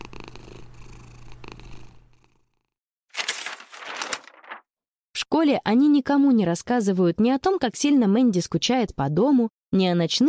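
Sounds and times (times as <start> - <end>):
cat purring lying beside someone in bed: 0.0 - 2.7
speech: 5.3 - 10.2.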